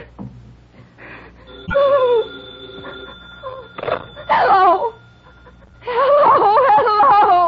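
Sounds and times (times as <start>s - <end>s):
telephone on a four-party line ringing: 1.4s - 7.4s.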